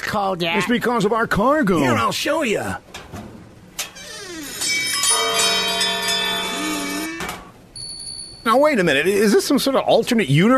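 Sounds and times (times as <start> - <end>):
speech: 0.1 - 3.3, 8.4 - 10.5
mission bells ringing: 4.6 - 7.2.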